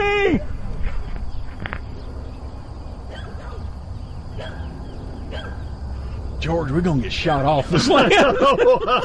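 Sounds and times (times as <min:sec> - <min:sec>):
steady outdoor rumble: 0:00.0 - 0:09.0
speech: 0:00.3 - 0:00.5, 0:06.5 - 0:09.0
bird dog barking: 0:03.1 - 0:05.8
laughter: 0:07.6 - 0:09.0.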